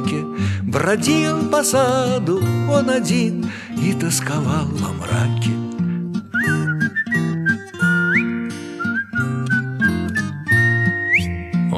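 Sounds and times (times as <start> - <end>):
speech: 0.1 - 5.8
person whistling a melodic tune: 6.2 - 11.4.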